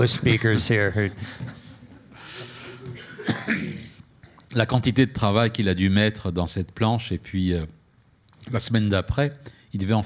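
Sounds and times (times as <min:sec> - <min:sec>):
speech: 0:00.0 - 0:01.6, 0:04.5 - 0:07.8, 0:08.4 - 0:10.0
man coughing: 0:02.8 - 0:04.0.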